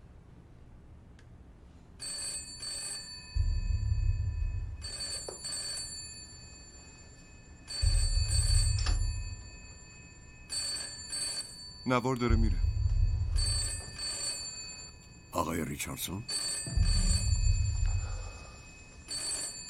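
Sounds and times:
telephone ringing: 0:02.0 - 0:19.6
low hum: 0:03.4 - 0:05.0, 0:07.8 - 0:10.2, 0:12.2 - 0:15.4, 0:16.7 - 0:19.1
speech: 0:11.9 - 0:12.7, 0:15.8 - 0:17.1.

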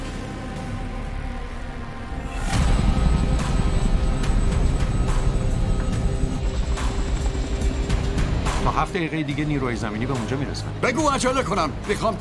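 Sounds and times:
helicopter engine roar: 0:00.0 - 0:10.8
speech: 0:08.9 - 0:12.1.

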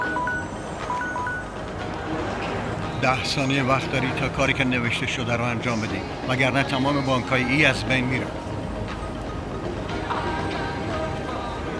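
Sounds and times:
telephone ringing with short electronic beeping tones: 0:00.0 - 0:01.5
steady rushing noise: 0:00.0 - 0:11.7
speech: 0:03.0 - 0:08.4.

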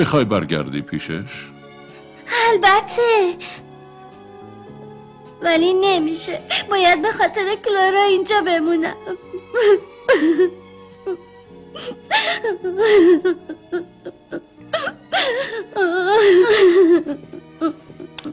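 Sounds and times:
speech: 0:00.0 - 0:01.6, 0:02.5 - 0:03.6, 0:05.4 - 0:18.3
girl crying and sobbing: 0:02.0 - 0:03.7, 0:05.4 - 0:18.3.

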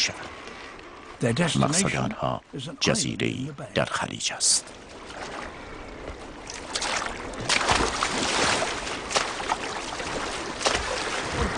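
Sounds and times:
water rushing and splashing around a paddled sea lion skin boat: 0:00.0 - 0:11.5
speech: 0:01.2 - 0:05.4
paddle strokes splashing from a sea lion skin boat: 0:04.7 - 0:11.5.

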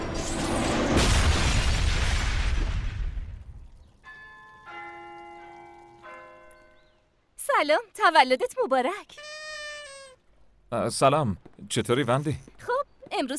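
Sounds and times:
heavy mortar explosions with roaring rumble: 0:00.2 - 0:03.8
mortar firing a round: 0:00.7 - 0:03.6
speech: 0:07.6 - 0:09.3, 0:10.7 - 0:13.3.

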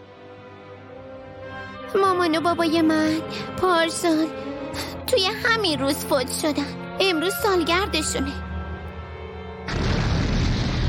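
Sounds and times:
speech: 0:01.9 - 0:08.5
200-gauge firecracker exploding with a loud boom: 0:09.7 - 0:10.8
dense rumbling roar: 0:09.7 - 0:10.8.

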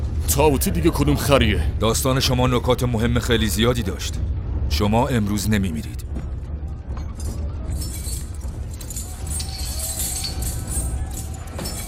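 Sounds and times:
steady low rumble of noise: 0:00.0 - 0:11.8
speech: 0:00.3 - 0:06.1
keys jangling while someone fumbles for a key: 0:07.0 - 0:11.8.

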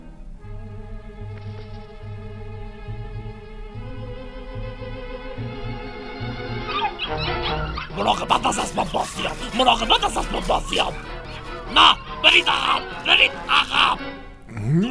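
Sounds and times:
low rhythmic thumping: 0:00.0 - 0:14.6
several puppies whimpering and yapping: 0:06.6 - 0:08.0
laughter: 0:07.9 - 0:14.8
speech: 0:08.0 - 0:11.1, 0:11.7 - 0:14.8.

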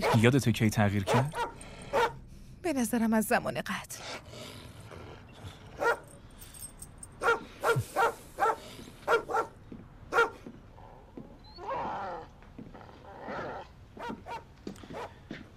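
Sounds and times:
neighbour's dog barking: 0:00.0 - 0:00.3, 0:01.0 - 0:02.2, 0:05.8 - 0:06.1, 0:07.2 - 0:10.4, 0:14.0 - 0:15.2
speech: 0:00.0 - 0:01.6, 0:02.7 - 0:04.3.

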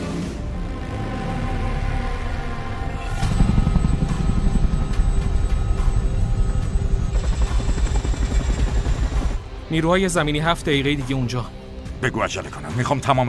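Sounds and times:
helicopter slowing down with rotor chop and engine rumble: 0:00.7 - 0:10.6
speech: 0:09.8 - 0:13.2.

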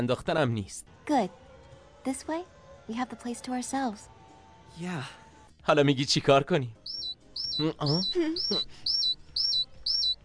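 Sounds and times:
speech: 0:00.0 - 0:01.4, 0:02.0 - 0:07.0, 0:07.6 - 0:08.9
malfunctioning watch giving short high electronic chirps: 0:06.8 - 0:10.2.

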